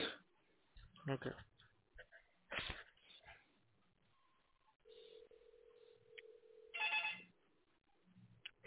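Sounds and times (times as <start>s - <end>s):
speech: 1.0s - 1.6s
telephone ringing down a phone line: 4.9s - 7.4s.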